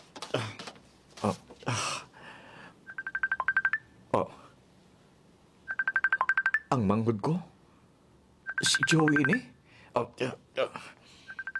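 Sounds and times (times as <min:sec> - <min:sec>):
speech: 0:01.2 - 0:01.9, 0:06.9 - 0:07.5, 0:08.6 - 0:11.0
touch-tone telephone keypad beeps dialing a number: 0:02.9 - 0:03.8, 0:05.7 - 0:06.7, 0:08.5 - 0:09.5, 0:11.3 - 0:11.5.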